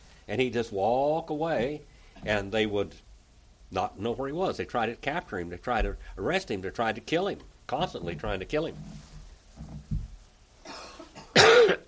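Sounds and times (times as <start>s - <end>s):
speech: 0.3s - 3.1s, 3.7s - 9.0s
person coughing harshly: 10.6s - 11.8s.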